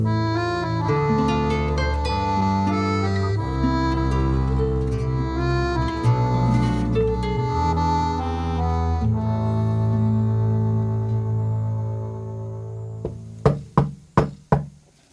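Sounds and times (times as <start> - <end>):
humming musical tone: 0.0 - 13.4
light discreet knocks on a door by a small fist: 13.0 - 14.8.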